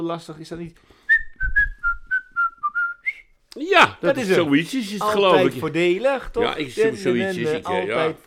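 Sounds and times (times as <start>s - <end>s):
speech: 0.0s - 1.0s, 3.6s - 8.2s
person whistling a department store advertising jingle: 1.1s - 3.3s.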